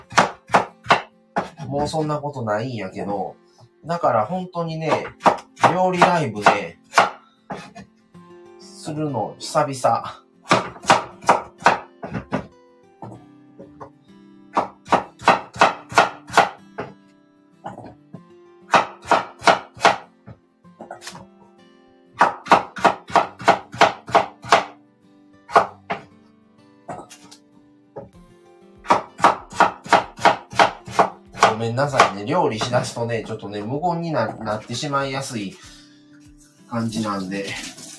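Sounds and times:
knife chopping peeled sweet potato: 0:00.0 - 0:02.0, 0:04.8 - 0:07.8, 0:10.5 - 0:13.9, 0:14.6 - 0:17.0, 0:18.7 - 0:20.0, 0:22.2 - 0:24.7, 0:25.5 - 0:26.0, 0:28.9 - 0:33.6
speech: 0:01.7 - 0:07.1, 0:08.9 - 0:10.2, 0:31.8 - 0:35.6, 0:36.7 - 0:37.7.

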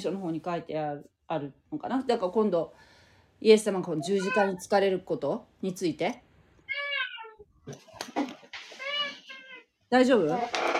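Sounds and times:
speech: 0:00.0 - 0:06.8, 0:07.7 - 0:08.2, 0:09.9 - 0:10.6
domestic cat meowing loudly: 0:04.0 - 0:04.6, 0:06.7 - 0:07.4.

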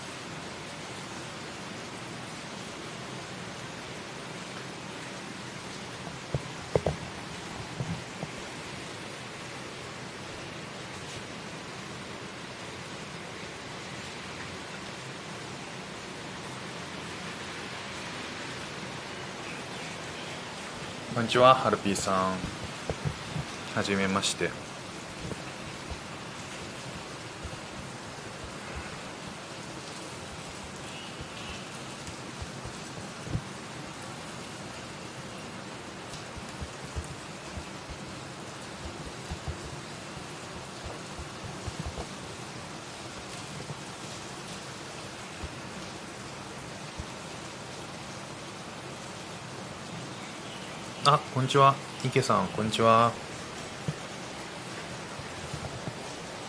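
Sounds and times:
heavy rain: 0:00.0 - 0:56.4
speech: 0:21.2 - 0:22.6, 0:23.8 - 0:24.7, 0:51.1 - 0:53.2
low rumbling thumps: 0:22.4 - 0:23.6.

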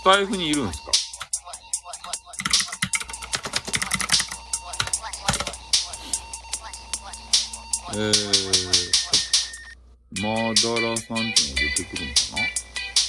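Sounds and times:
speech: 0:00.0 - 0:01.1, 0:07.9 - 0:09.0, 0:10.1 - 0:12.6
typing on a computer keyboard: 0:02.0 - 0:05.6.

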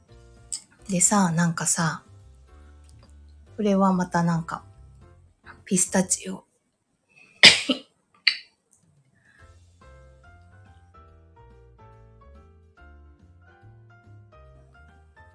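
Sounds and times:
soft music with a low plodding bass line: 0:00.0 - 0:06.6, 0:08.8 - 0:15.3
speech: 0:00.9 - 0:02.1, 0:03.6 - 0:04.7, 0:05.7 - 0:06.5
person coughing: 0:07.4 - 0:07.8.

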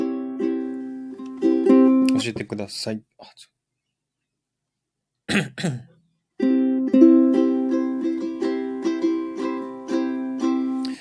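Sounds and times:
ukulele strummed at a steady rhythm: 0:00.0 - 0:02.5, 0:06.4 - 0:10.9
speech: 0:02.2 - 0:03.5, 0:05.3 - 0:05.9.

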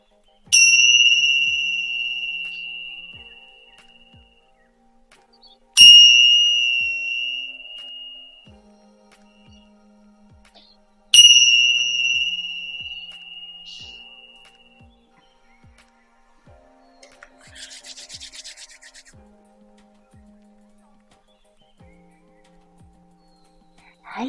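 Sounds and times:
tingsha bells struck: 0:00.0 - 0:04.4, 0:05.8 - 0:15.8.

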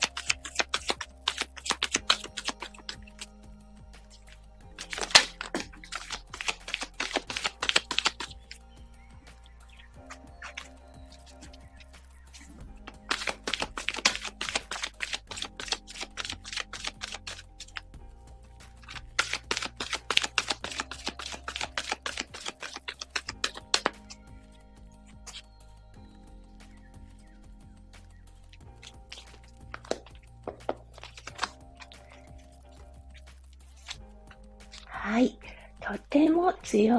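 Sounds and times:
oracle cards shuffled and drawn for a reading: 0:00.0 - 0:03.3, 0:04.0 - 0:08.7, 0:09.3 - 0:17.9, 0:18.6 - 0:24.2, 0:25.2 - 0:25.5, 0:28.5 - 0:34.0, 0:34.6 - 0:35.0
speech: 0:36.1 - 0:36.9.

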